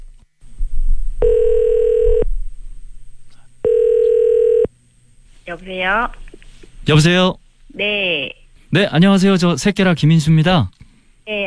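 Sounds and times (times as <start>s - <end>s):
faint hum: 0.0s - 11.4s
telephone ringback tone on a call to Daejeon: 1.2s - 2.2s, 3.6s - 4.7s
speech: 5.6s - 6.2s, 6.8s - 11.4s.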